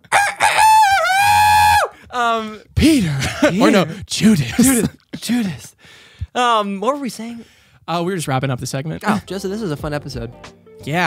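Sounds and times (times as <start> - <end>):
rooster crowing: 0.1 - 1.9
speech: 2.2 - 11.0.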